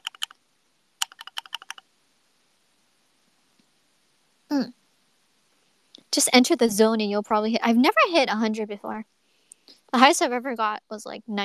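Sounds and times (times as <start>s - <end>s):
typing on a thocky mechanical computer keyboard: 0.0s - 0.3s, 1.0s - 1.8s
speech: 4.5s - 4.8s, 6.2s - 9.2s, 10.0s - 11.4s.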